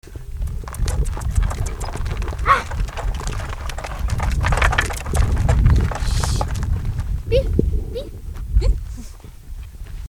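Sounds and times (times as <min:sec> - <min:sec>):
cart noises: 0:00.3 - 0:07.2.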